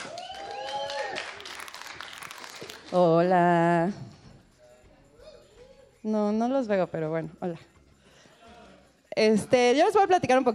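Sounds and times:
voices whooping and cheering: 0:00.0 - 0:01.7
audience applause: 0:00.0 - 0:02.9
speech: 0:02.9 - 0:04.1, 0:06.0 - 0:07.7, 0:09.2 - 0:10.5.

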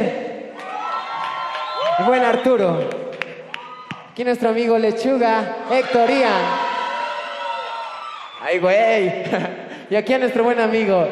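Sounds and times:
crowd cheering and whooping: 0:00.5 - 0:04.1, 0:05.7 - 0:08.8
speech: 0:02.0 - 0:03.0, 0:04.2 - 0:06.6, 0:08.4 - 0:11.1
laughter: 0:09.0 - 0:09.8.

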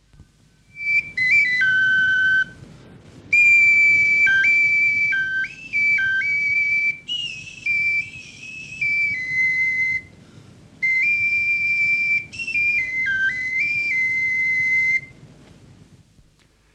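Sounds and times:
small bone flute playing high sustained notes: 0:00.6 - 0:02.6, 0:03.3 - 0:10.2, 0:10.8 - 0:15.2.

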